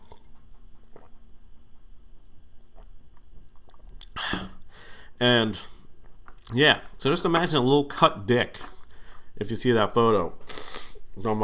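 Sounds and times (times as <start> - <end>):
person sipping a drink: 0.0 - 7.0, 8.6 - 9.2, 10.4 - 11.2
speech: 5.2 - 5.7, 6.5 - 8.7, 9.4 - 10.6, 11.2 - 11.4.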